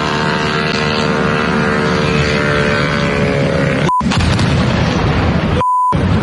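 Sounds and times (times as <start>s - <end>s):
attack drone engine buzzing: 0.0s - 6.2s
loud explosion: 4.0s - 6.2s
short electronic beep: 5.6s - 6.0s.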